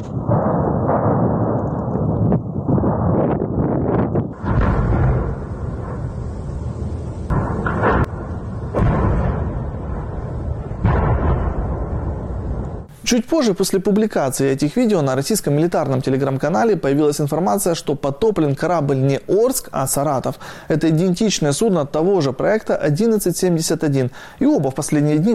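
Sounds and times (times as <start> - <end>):
continuous heavy roar and rumble: 0.0 - 12.9
explosions at fuel tanks and an ammunition depot booming: 0.0 - 12.9
speech: 13.1 - 25.3.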